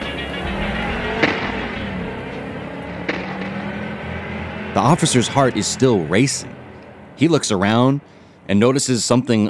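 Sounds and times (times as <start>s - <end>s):
rumbling road noise: 0.0s - 9.4s
stolen car engine roaring as it speeds away: 0.0s - 9.4s
sharp knocks: 1.2s - 1.8s, 3.0s - 3.8s
speech: 4.8s - 6.6s, 7.2s - 9.4s.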